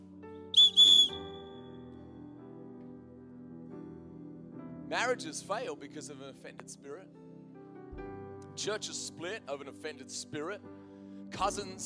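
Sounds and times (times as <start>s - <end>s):
shrill whistle blasts: 0.6s - 1.8s
speech: 4.9s - 7.2s, 8.0s - 11.8s.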